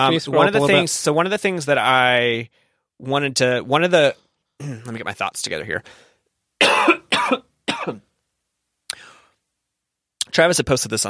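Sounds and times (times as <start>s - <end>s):
speech: 0.0s - 6.1s, 7.3s - 8.1s, 10.4s - 11.0s
harsh coughs: 6.6s - 8.1s.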